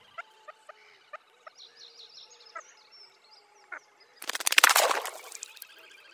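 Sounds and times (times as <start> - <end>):
water bird mating calls: 4.2 - 5.6.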